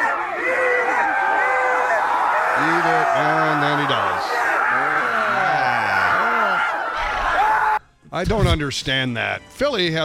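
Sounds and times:
crowd screaming and whooping: 0.0 - 7.8
speech: 2.6 - 4.9, 8.2 - 10.0.

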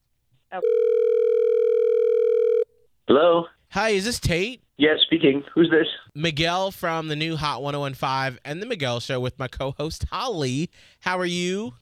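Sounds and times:
speech: 0.5 - 1.2, 3.1 - 11.8
steady loud telephone line tone: 0.6 - 2.7.

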